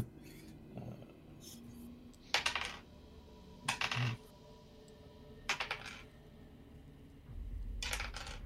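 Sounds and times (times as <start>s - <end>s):
ten-sided dice rolled on a tabletop: 2.3s - 2.9s, 3.7s - 4.2s, 5.5s - 6.1s, 7.8s - 8.4s.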